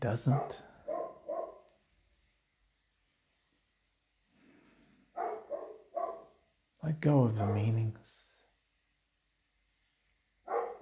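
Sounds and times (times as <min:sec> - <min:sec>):
speech: 0:00.0 - 0:00.7, 0:06.8 - 0:08.2
dog barking: 0:00.2 - 0:01.7, 0:05.1 - 0:06.4, 0:07.4 - 0:07.8, 0:10.5 - 0:10.7.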